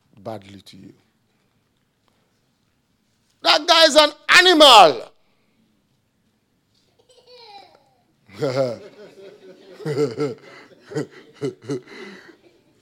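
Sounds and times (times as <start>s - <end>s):
speech: 0.2s - 1.1s, 3.8s - 5.1s, 8.4s - 8.9s, 9.8s - 12.2s
baby babbling and chuckling: 7.0s - 8.1s.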